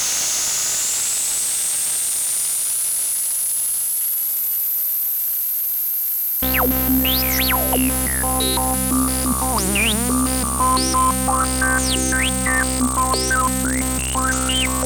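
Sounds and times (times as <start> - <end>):
analog synthesizer filter modulation: 6.5 - 14.8.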